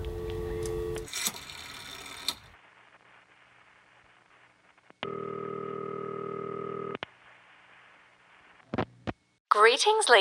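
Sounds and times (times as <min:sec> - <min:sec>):
steady electronic telephone dial tone: 0:00.1 - 0:01.1, 0:05.0 - 0:07.0
speech: 0:09.6 - 0:10.2.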